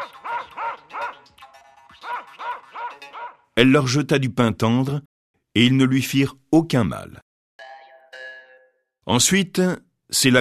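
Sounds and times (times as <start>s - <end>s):
two very thin dogs barking: 0.0s - 1.4s, 2.0s - 3.5s
speech: 3.6s - 7.3s, 9.0s - 10.3s.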